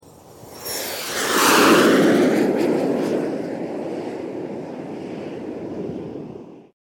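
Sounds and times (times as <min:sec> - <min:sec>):
jet flying past: 0:00.0 - 0:06.8.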